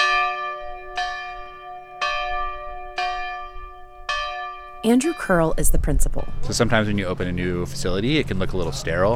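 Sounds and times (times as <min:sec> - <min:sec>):
large old schoolhouse bell ringing: 0:00.0 - 0:07.9
speech: 0:04.8 - 0:09.1.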